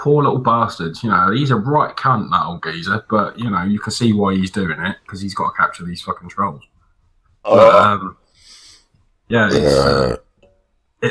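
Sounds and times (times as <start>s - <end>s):
speech: 0.0s - 6.7s, 7.4s - 8.2s, 9.3s - 10.2s
person belching: 7.5s - 8.0s, 9.5s - 10.3s.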